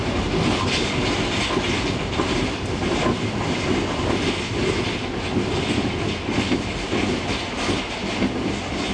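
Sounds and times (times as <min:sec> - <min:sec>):
train in spring: 0:00.0 - 0:08.9.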